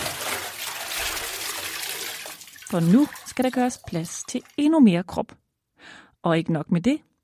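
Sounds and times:
water churning and splashing in a bathtub from a body: 0:00.0 - 0:04.7
speech: 0:02.7 - 0:07.1.

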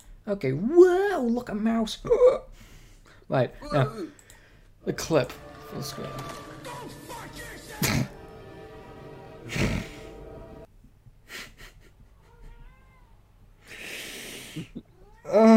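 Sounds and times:
speech: 0:00.2 - 0:02.7, 0:03.3 - 0:04.2, 0:04.8 - 0:06.4, 0:15.3 - 0:15.5
cat meowing at a door: 0:12.2 - 0:13.2.

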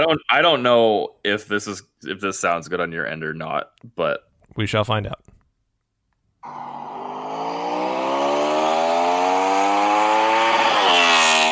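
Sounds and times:
speech: 0:00.0 - 0:05.3, 0:06.4 - 0:07.0
Honda motorcycle engine revving hard to the rev limiter: 0:06.4 - 0:11.4.

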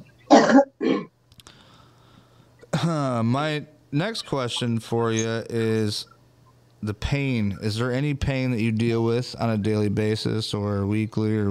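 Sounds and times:
person clearing throat: 0:00.3 - 0:01.1
speech: 0:00.5 - 0:01.0, 0:02.9 - 0:06.1, 0:06.8 - 0:11.5.

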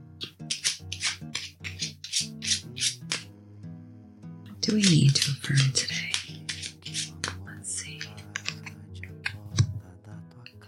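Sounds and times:
deck of cards being shuffled by hand: 0:00.2 - 0:03.3, 0:04.6 - 0:09.8
speech: 0:04.7 - 0:06.1.

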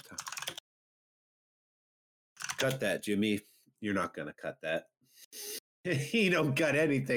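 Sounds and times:
computer keyboard typing: 0:00.0 - 0:00.6, 0:02.4 - 0:02.8
speech: 0:02.6 - 0:07.1.

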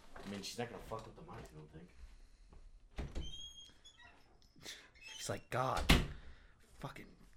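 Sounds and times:
speech: 0:00.2 - 0:02.1, 0:04.6 - 0:06.1, 0:06.8 - 0:07.2
door hinges squeaking: 0:03.0 - 0:06.1.

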